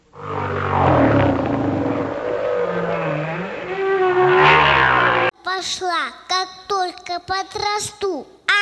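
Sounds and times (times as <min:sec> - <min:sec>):
humpback whale singing: 0:00.0 - 0:05.3
speech: 0:05.6 - 0:08.3.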